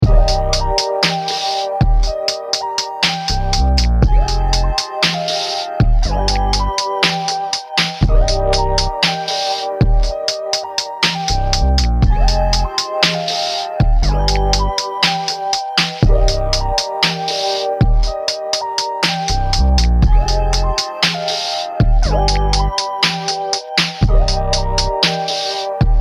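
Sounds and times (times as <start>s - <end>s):
arpeggiated synth melody: 0.0s - 25.9s.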